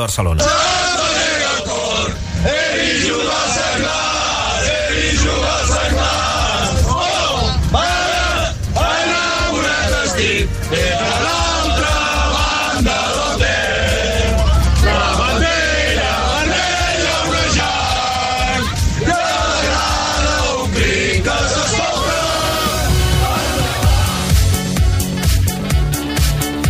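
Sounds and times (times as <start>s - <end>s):
speech: 0.0s - 0.9s
fans chanting and shouting inside a bus: 0.0s - 24.8s
low bus engine rumble: 0.0s - 26.6s.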